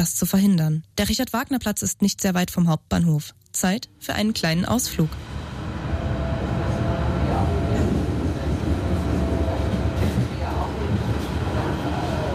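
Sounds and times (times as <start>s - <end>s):
speech: 0.0s - 5.4s
S-Bahn commuter train S3 to Halle an der Saale rolling along: 4.0s - 12.3s
faint murmurs of train passengers: 6.2s - 12.3s.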